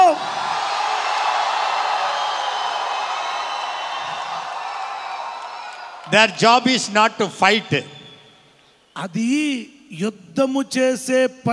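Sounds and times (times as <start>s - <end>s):
crowd shouting in victory: 0.0s - 7.2s
speech: 6.1s - 8.0s, 9.0s - 11.5s.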